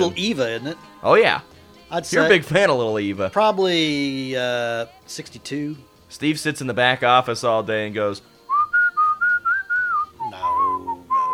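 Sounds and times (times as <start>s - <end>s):
speech: 0.0s - 8.3s
man whistling a bouncy pop song melody: 8.5s - 11.3s.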